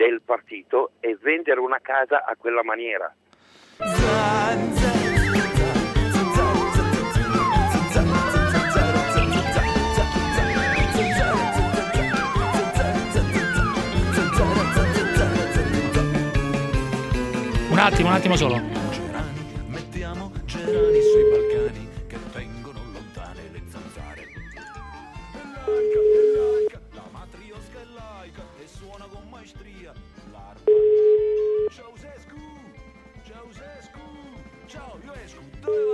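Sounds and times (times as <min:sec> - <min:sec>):
speech: 0:00.1 - 0:05.4, 0:17.8 - 0:18.8
music: 0:03.7 - 0:35.9
outgoing call telephone ringback tone beeps: 0:20.7 - 0:21.7, 0:25.7 - 0:26.7, 0:30.7 - 0:31.7, 0:35.7 - 0:35.9.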